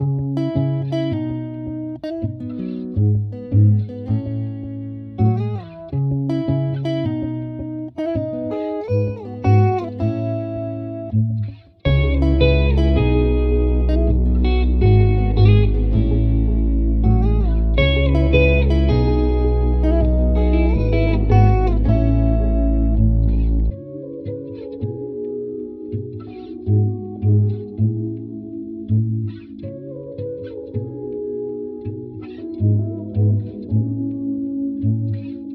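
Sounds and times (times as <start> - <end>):
guitar playing in E major at 162 BPM: 0.0 - 35.5.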